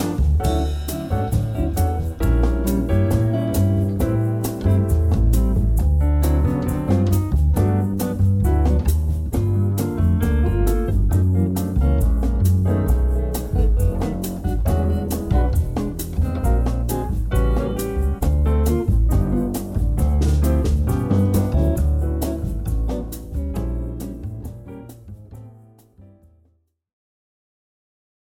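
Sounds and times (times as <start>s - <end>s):
backing music: 0.0s - 25.6s.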